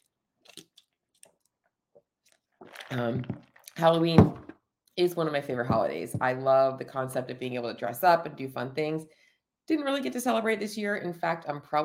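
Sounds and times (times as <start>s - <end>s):
person sipping a drink: 2.6s - 3.0s
speech: 2.9s - 4.4s, 5.0s - 11.8s.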